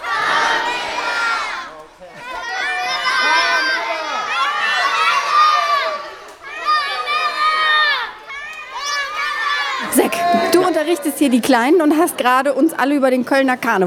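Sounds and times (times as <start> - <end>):
children shouting together for carnival sweets at the Cologne carnival: 0.0 - 11.1
speech: 11.2 - 13.8.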